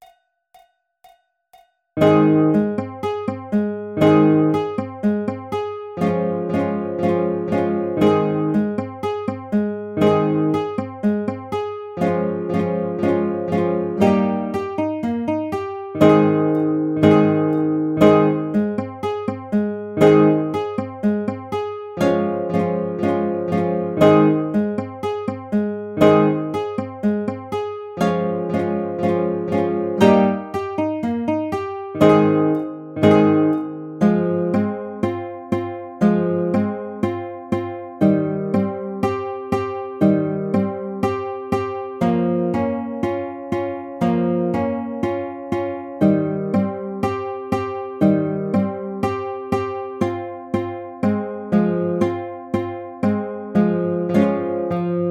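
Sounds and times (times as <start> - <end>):
Ab major baritone arpeggiator: 2.0 - 55.0.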